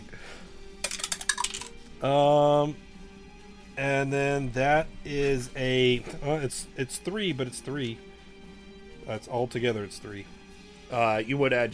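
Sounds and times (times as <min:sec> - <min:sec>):
dice clattering and tumbling across a hard tabletop: 0:00.8 - 0:01.7
speech: 0:02.0 - 0:02.9, 0:03.8 - 0:08.1, 0:09.1 - 0:11.7.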